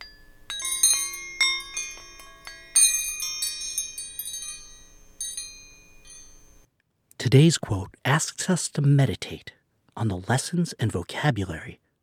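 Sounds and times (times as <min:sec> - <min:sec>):
metal wrenches struck together chiming like bells: 0:00.0 - 0:06.7
speech: 0:07.2 - 0:11.8.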